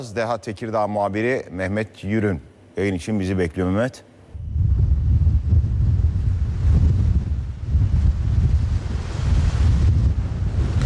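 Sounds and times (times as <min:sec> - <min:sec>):
speech: 0:00.0 - 0:04.1
strong storm wind roaring into the microphone: 0:04.3 - 0:10.8.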